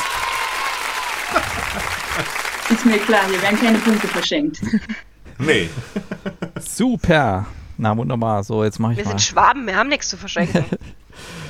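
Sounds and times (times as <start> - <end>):
group applauding the winner of a game: 0.0 - 4.3
laughter: 0.0 - 6.7, 10.3 - 11.4
speech: 2.7 - 11.4.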